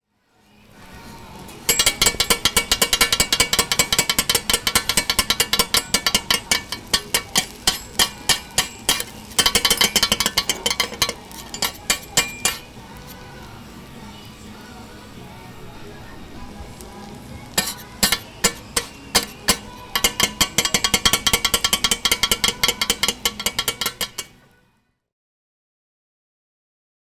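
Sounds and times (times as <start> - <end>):
monjayaki sizzling on a griddle: 0.3 - 24.5.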